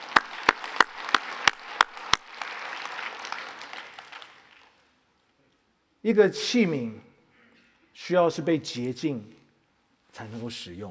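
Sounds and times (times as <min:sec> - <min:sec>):
softer scattered applause from many hands: 0:00.0 - 0:04.8
audience clapping in unison: 0:00.0 - 0:04.9
speech: 0:06.0 - 0:07.1, 0:08.1 - 0:09.4, 0:10.2 - 0:10.8.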